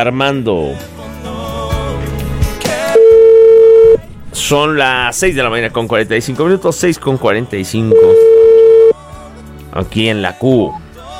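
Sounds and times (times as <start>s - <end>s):
speech: 0.0s - 1.0s, 4.4s - 8.3s, 9.8s - 10.8s
telephone line tone while waiting for an answer: 2.9s - 4.0s, 7.9s - 9.0s.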